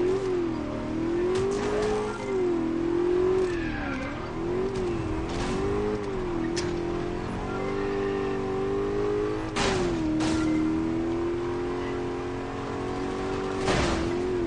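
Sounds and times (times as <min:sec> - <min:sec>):
racing car engine revving and accelerating through gear changes: 0:00.0 - 0:14.4
tire squeal: 0:01.0 - 0:10.8.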